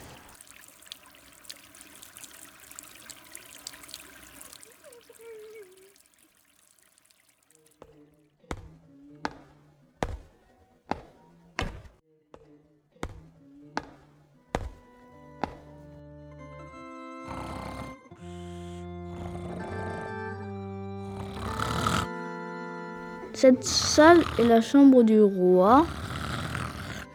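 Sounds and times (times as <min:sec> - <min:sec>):
water trickling and splashing from watering plants: 0:00.0 - 0:08.3, 0:23.2 - 0:27.0
speech: 0:23.4 - 0:26.0.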